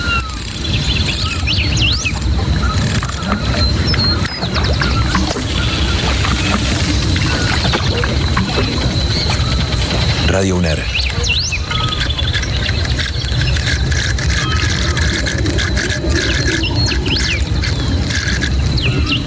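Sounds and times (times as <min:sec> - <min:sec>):
birds chirping and whistling: 0:00.0 - 0:19.2
river flowing: 0:04.4 - 0:10.3
speech: 0:10.4 - 0:11.1.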